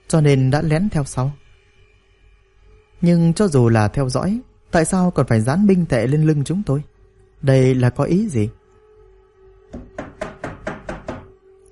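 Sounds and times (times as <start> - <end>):
faint steady hum: 0.0 - 11.7
speech: 0.1 - 1.4, 3.0 - 8.6
knocking on a door: 9.7 - 11.4.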